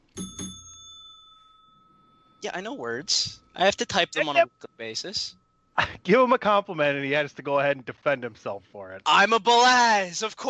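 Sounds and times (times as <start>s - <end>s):
bell struck as a sound effect: 0.0s - 6.8s
speech: 2.4s - 10.4s.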